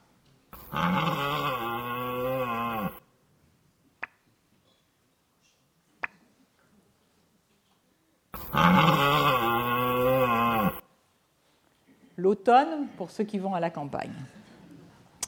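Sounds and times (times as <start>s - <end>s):
red deer stag bellowing during the autumn rut: 0.6s - 3.0s, 8.4s - 10.8s
speech: 12.4s - 14.4s.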